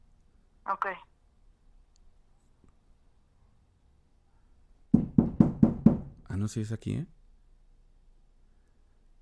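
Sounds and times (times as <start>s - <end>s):
speech: 0.7s - 1.1s, 6.4s - 7.2s
loud knocking on a door: 4.9s - 6.3s.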